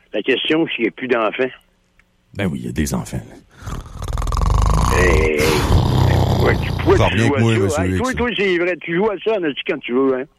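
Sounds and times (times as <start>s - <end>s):
speech: 0.1s - 1.6s, 2.3s - 3.8s, 5.0s - 5.7s, 6.4s - 10.3s
person making a loud rough snoring imitation with their voice: 3.6s - 8.2s.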